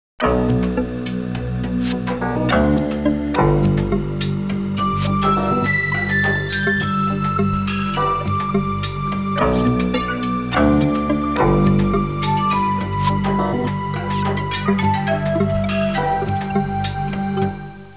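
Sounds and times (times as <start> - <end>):
techno music: 0.2 - 17.6.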